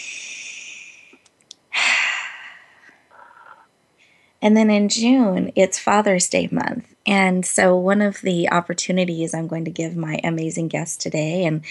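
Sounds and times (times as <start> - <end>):
deep breath: 0.0 - 4.4
speech: 4.4 - 11.6.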